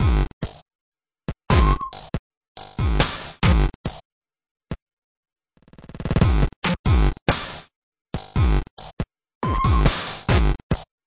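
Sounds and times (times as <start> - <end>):
crunchy drum loops and breaks: 0.0 - 0.6, 1.3 - 4.0, 5.7 - 7.6, 8.2 - 10.9.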